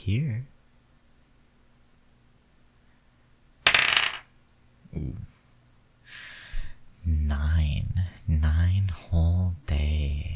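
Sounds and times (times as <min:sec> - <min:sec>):
speech: 0:00.0 - 0:00.5, 0:07.0 - 0:10.3
twelve-sided die clattering on a hard surface: 0:03.7 - 0:04.3.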